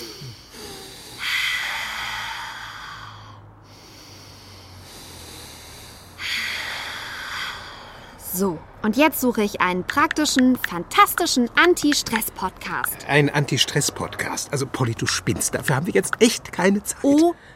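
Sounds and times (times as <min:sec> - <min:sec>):
slow deep breathing in and out: 0:00.0 - 0:08.3
speech: 0:08.4 - 0:17.5.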